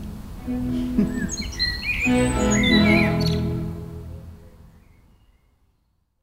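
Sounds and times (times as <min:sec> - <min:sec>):
low steady hum: 0:00.0 - 0:05.1
laughter: 0:00.5 - 0:03.4
speech: 0:00.5 - 0:03.5
blackbird singing in a garden: 0:00.5 - 0:05.5.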